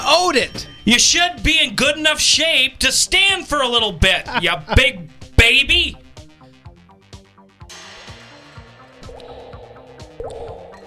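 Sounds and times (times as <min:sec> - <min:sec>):
speech: 0:00.2 - 0:06.0
low humming tones: 0:09.0 - 0:10.8
slow dripping water effect: 0:09.0 - 0:10.8.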